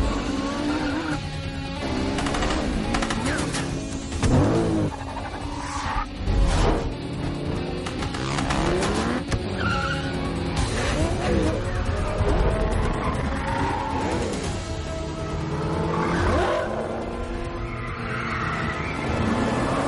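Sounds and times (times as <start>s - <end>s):
car tires squealing and skidding in a car park: 0.0s - 1.3s, 4.4s - 6.1s, 8.8s - 19.8s
motorcycle engines roaring: 0.0s - 19.8s.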